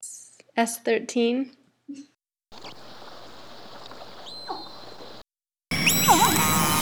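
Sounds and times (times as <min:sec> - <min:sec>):
killer whale calls: 0:02.6 - 0:06.8.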